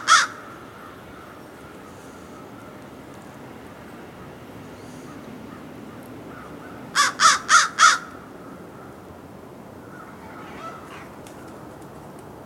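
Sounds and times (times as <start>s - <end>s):
American crow (Corvus brachyrhynchos) giving harsh rasping caws: 0.0s - 2.8s, 6.3s - 9.0s, 9.8s - 11.2s.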